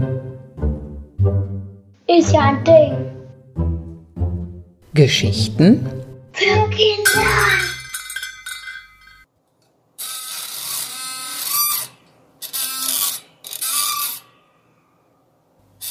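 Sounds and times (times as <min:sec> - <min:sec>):
speech: 0:02.1 - 0:03.7, 0:05.0 - 0:07.6
metal spring squeaking and grinding: 0:07.1 - 0:09.2, 0:10.0 - 0:14.4.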